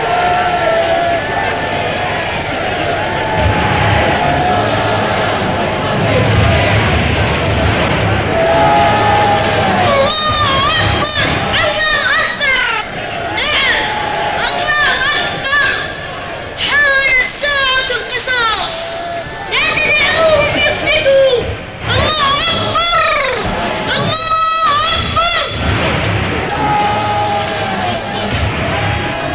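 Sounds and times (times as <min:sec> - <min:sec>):
large angry crowd shouting in the streets: 0:00.0 - 0:29.3.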